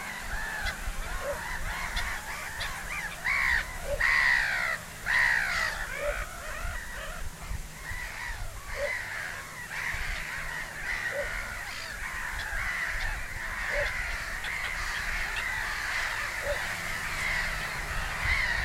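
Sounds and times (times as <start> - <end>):
little bittern calling in the Mohrweiher area: 0.0 - 18.6.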